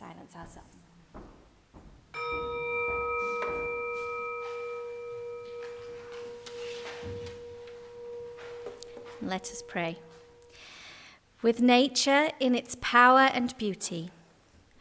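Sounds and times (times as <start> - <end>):
faint room noises: 0.0 - 14.7
singing bowl struck and ringing: 2.1 - 11.0
speech: 9.2 - 10.2, 11.4 - 14.2.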